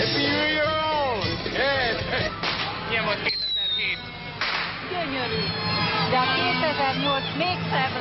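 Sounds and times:
crowd of thousands celebrating New Year's Eve outdoors in Budapest streets: 0:00.0 - 0:08.0
New Year's Eve fireworks crackling and popping in Budapest streets: 0:02.3 - 0:05.2
whistling fireworks: 0:03.2 - 0:05.6
sharp firework bangs: 0:04.4 - 0:05.1
speech: 0:06.8 - 0:08.0.

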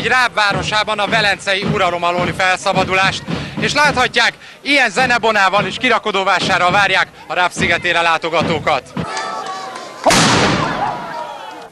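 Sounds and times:
speech: 0:00.0 - 0:09.2
faint crowd noise and voices: 0:00.0 - 0:11.6
ceremonial cannon blast with long decay: 0:10.1 - 0:11.1.

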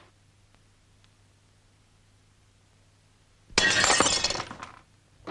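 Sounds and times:
glass shattering as an object is smashed: 0:03.6 - 0:04.7.

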